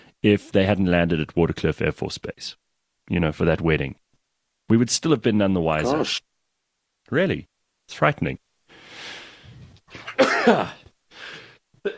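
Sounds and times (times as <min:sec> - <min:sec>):
speech: 0:00.2 - 0:04.0, 0:04.7 - 0:06.3, 0:07.1 - 0:08.4, 0:09.9 - 0:10.8
morning sneeze: 0:05.8 - 0:06.2.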